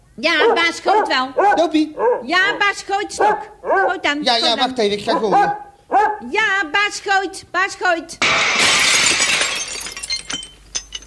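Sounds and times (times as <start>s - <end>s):
speech: 0.2s - 8.9s
window glass shattering: 8.2s - 11.0s
glass pieces falling and clinking: 8.4s - 11.0s.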